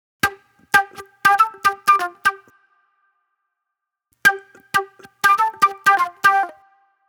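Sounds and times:
fast funk flute music: 0.2s - 2.5s, 4.3s - 6.8s.

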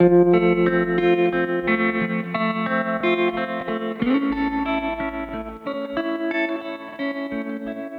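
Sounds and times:
tremolo guitar in 70s analog funk: 0.0s - 7.9s.

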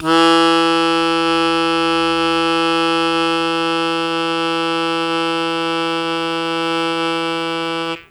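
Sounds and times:
harmonica long sustained E0 note: 0.0s - 8.0s.

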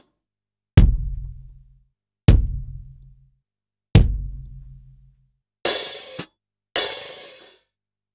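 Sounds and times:
sliced acoustic drum kit: 0.8s - 3.2s, 4.0s - 7.6s.

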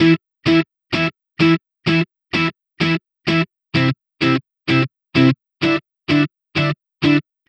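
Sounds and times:
electric pop guitar in E minor: 0.0s - 7.2s.

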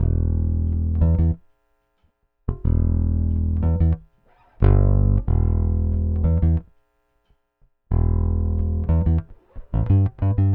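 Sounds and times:
rock bass guitar: 0.0s - 1.4s, 2.5s - 6.7s, 7.9s - 10.5s.

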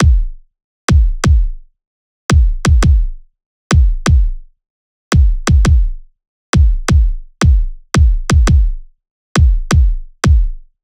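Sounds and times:
kick drum loop at 170: 0.0s - 1.6s, 2.3s - 4.4s, 5.1s - 6.0s, 6.6s - 8.8s, 9.4s - 10.6s.

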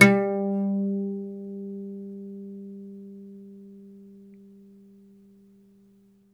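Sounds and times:
oud plucked strings: 0.0s - 4.6s.

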